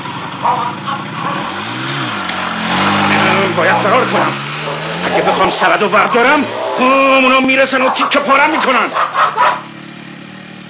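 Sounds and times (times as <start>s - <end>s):
motorcycle engine revving loudly while turning around: 0.0s - 10.6s
speech: 0.4s - 2.2s, 3.5s - 4.5s, 5.1s - 9.7s.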